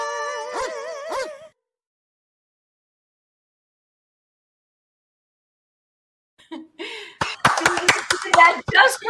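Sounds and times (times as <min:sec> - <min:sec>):
sharp hand claps: 0:07.2 - 0:09.0.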